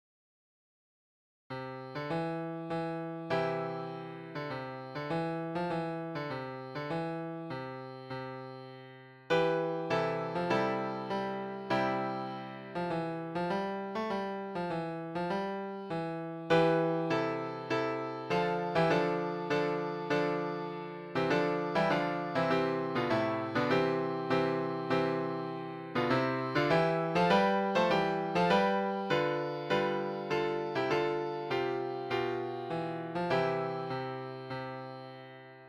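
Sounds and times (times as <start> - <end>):
MIDI piano: 1.5 - 35.6.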